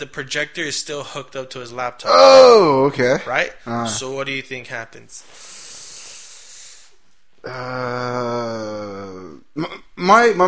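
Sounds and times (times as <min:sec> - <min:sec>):
speech: 0:00.0 - 0:05.6, 0:07.4 - 0:10.4
person yawning with a long voiced groan: 0:02.1 - 0:02.8, 0:07.4 - 0:09.8.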